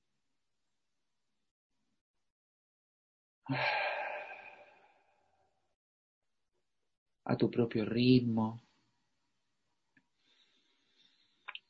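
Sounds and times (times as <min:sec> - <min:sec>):
speech: 0:03.5 - 0:03.8, 0:07.3 - 0:08.6
person exhaling deeply through the mouth during a slow breathing exercise: 0:03.5 - 0:05.0.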